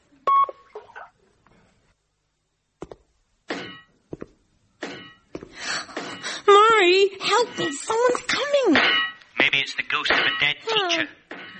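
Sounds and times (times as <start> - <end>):
electronic telephone call waiting beep: 0.3 - 0.6
speech: 6.8 - 8.8, 9.9 - 11.2.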